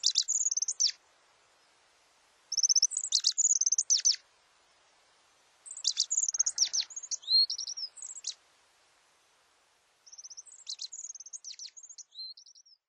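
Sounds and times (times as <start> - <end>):
Japanese accentor singing twittering phrases at Norikura, Japan: 0.0 - 1.0, 2.5 - 4.2, 5.6 - 8.4, 10.0 - 12.8.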